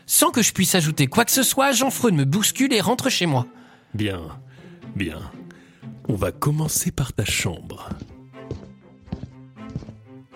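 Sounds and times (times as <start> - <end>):
speech: 0.1 - 5.4, 6.1 - 8.6
slow heavy footsteps on wooden stairs: 6.0 - 10.3.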